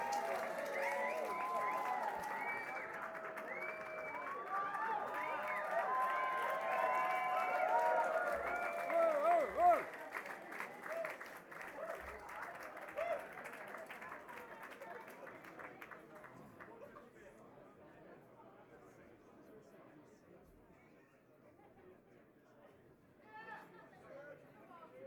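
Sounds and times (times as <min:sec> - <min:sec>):
audience: 0:00.0 - 0:16.8.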